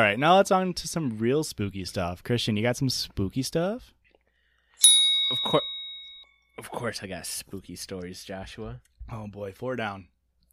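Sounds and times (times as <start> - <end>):
speech: 0.0 - 4.0, 6.6 - 10.1
bell ringing: 4.8 - 6.6.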